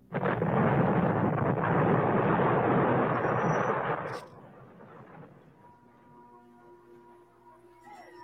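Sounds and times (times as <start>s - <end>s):
loud bomb explosion: 0.0s - 5.7s
heavy roar of rumbling debris: 0.0s - 6.0s.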